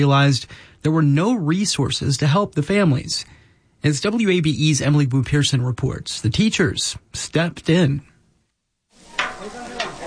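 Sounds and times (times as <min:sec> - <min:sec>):
speech: 0:00.0 - 0:08.1
pork and beef for tacos sizzling on a flat-top grill in a park: 0:09.0 - 0:10.0.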